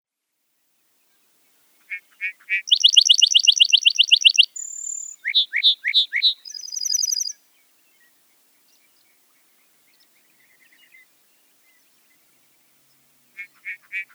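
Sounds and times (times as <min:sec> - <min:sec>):
lark bunting: 0:01.9 - 0:07.4.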